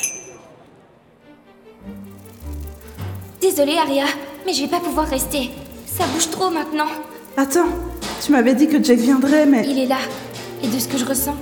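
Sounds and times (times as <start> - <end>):
glasses clinking in a toast: 0.0 - 0.4
speech: 3.4 - 11.4.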